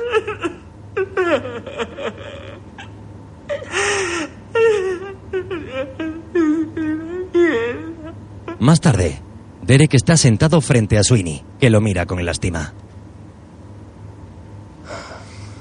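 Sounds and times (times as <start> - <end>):
man sobbing inconsolably: 0.0 - 8.9
speech: 8.7 - 12.9.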